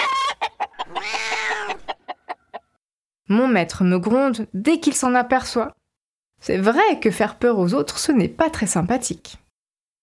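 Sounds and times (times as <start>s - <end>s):
angry mother hen clucking and squawking: 0.0s - 2.8s
speech: 3.3s - 5.8s, 6.4s - 9.4s.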